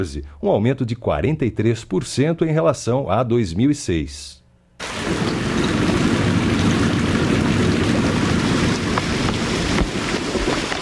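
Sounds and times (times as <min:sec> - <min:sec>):
speech: 0:00.0 - 0:05.4
irrigation system spraying water over a cornfield: 0:04.8 - 0:10.8.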